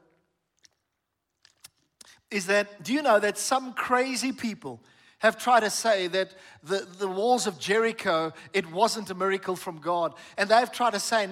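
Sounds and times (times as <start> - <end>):
person sipping water: 0.2 - 2.3
speech: 2.3 - 11.2.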